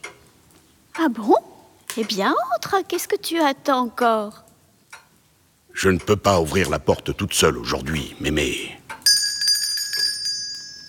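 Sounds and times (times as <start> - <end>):
speech: 1.0 - 4.4, 5.8 - 8.8
small metallic bell rung at a door: 9.0 - 10.8.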